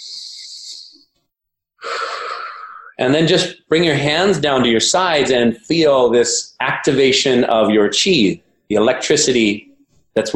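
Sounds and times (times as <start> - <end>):
deep breathing during a qi breathing exercise: 1.8 - 3.0
speech: 3.0 - 10.3.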